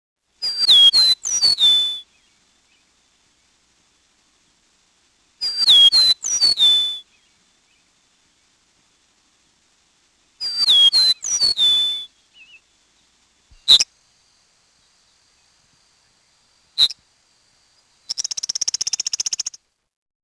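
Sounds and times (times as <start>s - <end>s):
eastern meadowlark singing: 0.4s - 2.9s, 5.4s - 7.9s, 10.4s - 13.9s, 16.7s - 17.0s, 17.7s - 19.6s.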